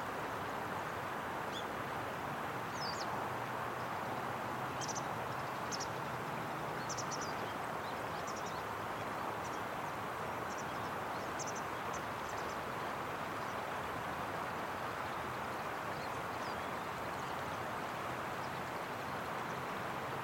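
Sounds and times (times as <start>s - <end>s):
moving water at the waterside at dawn: 0.0s - 20.2s.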